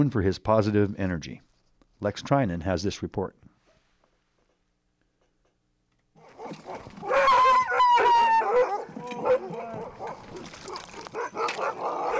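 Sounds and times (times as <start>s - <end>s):
speech: 0.0s - 3.4s
many chained sled dogs barking and yipping at feeding: 6.2s - 12.1s.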